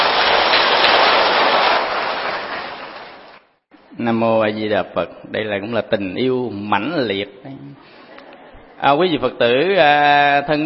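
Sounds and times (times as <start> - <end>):
large audience applause: 0.0 - 3.4
speech: 4.0 - 7.9, 8.8 - 10.6.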